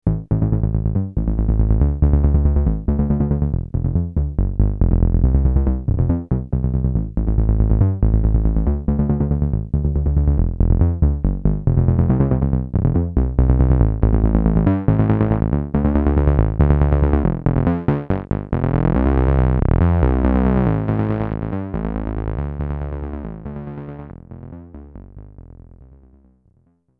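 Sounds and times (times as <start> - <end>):
synthesizer bass: 0.1 - 26.5.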